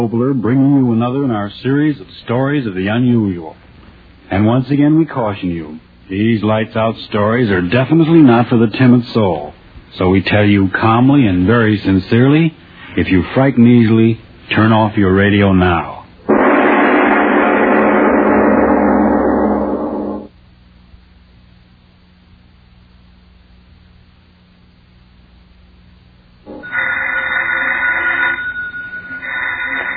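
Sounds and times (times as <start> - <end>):
speech: 0.0 - 3.6, 4.3 - 16.0
quiet hum: 0.0 - 29.9
telephone bell ringing: 26.5 - 29.9.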